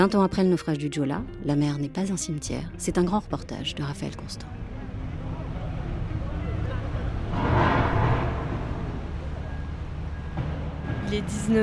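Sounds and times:
speech: 0.0s - 4.6s, 11.1s - 11.6s
ferry low engine rumble: 3.4s - 11.6s.

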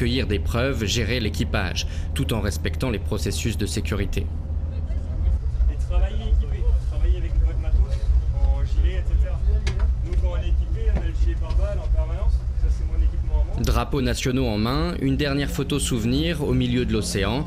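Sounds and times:
speech: 0.0s - 4.4s, 13.6s - 17.4s
fast patrol boat motor droning on the ocean: 0.0s - 17.4s.

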